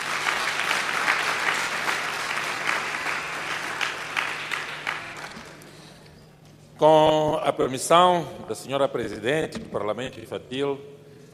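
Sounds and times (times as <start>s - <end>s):
audience applause: 0.0s - 5.8s
speech: 6.8s - 11.0s.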